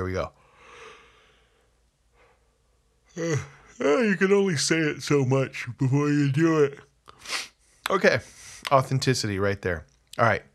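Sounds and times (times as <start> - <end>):
speech: 0.0 - 0.4, 3.2 - 10.5
person yawning: 3.2 - 3.9.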